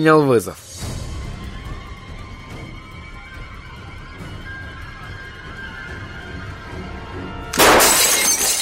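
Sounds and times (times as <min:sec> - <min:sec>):
speech: 0:00.0 - 0:00.7
tinkling debris of breaking glass shards: 0:07.6 - 0:08.5
window glass shattering: 0:07.6 - 0:08.5.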